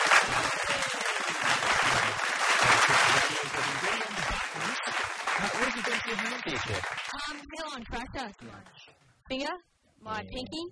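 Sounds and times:
audience clapping: 0.0s - 7.6s
speech: 5.9s - 10.7s.

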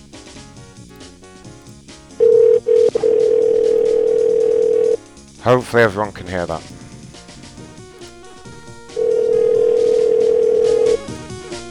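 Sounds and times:
telephone dial tone while placing a call: 2.2s - 5.0s, 8.2s - 11.2s
speech: 5.5s - 6.7s.

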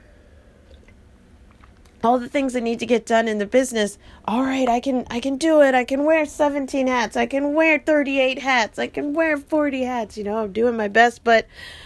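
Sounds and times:
swallow: 0.0s - 1.8s
low hum: 0.0s - 11.8s
sipping water: 0.1s - 2.0s
speech: 2.0s - 11.8s.

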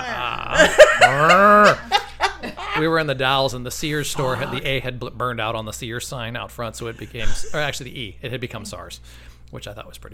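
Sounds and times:
voice imitating an irritated cow mooing: 0.0s - 1.8s
laughter: 0.0s - 3.0s, 4.0s - 4.8s, 6.9s - 7.8s
speech: 0.6s - 1.8s, 2.8s - 10.1s.

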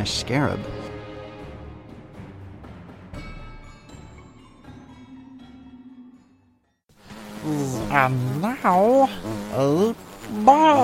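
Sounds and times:
speech: 0.0s - 0.8s, 7.4s - 10.8s
insect-like buzzes with bending rising pitch: 6.9s - 10.8s.

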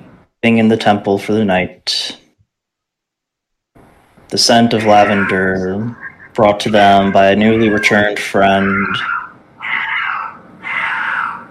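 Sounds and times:
speech: 0.4s - 2.1s, 4.3s - 9.2s
cats in heat yowling at night: 4.7s - 11.5s.

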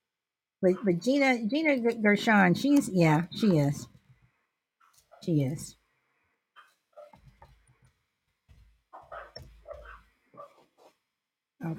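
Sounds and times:
speech: 0.6s - 3.9s, 5.2s - 5.8s
dog barking in yappy bursts: 9.0s - 10.6s.

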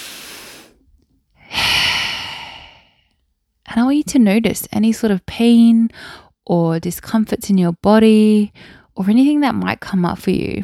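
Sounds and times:
deep breath in: 0.0s - 0.8s, 1.4s - 3.1s
speech: 3.7s - 10.6s.

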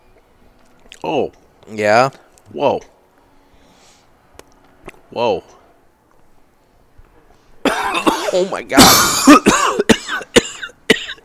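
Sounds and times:
speech: 1.0s - 2.9s, 5.1s - 5.6s, 8.0s - 9.9s
man coughing after retrohaling cigar smoke: 7.6s - 11.2s.

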